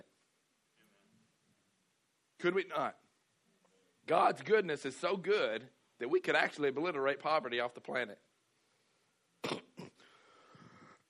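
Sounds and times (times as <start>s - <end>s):
speech: 2.4s - 3.0s, 4.1s - 8.3s
preacher clearing his throat mid-sermon: 9.4s - 10.1s.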